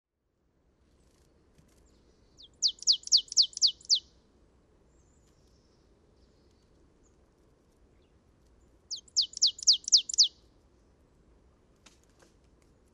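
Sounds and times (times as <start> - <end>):
Poecile palustris marsh tit calling: 2.4 - 4.0, 8.9 - 10.3.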